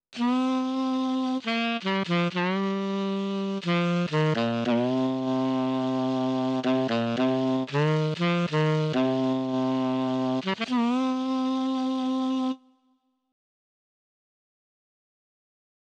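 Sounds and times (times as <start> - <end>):
dry mellotron alto sax sample on a synthesizer: 0.2 - 12.9.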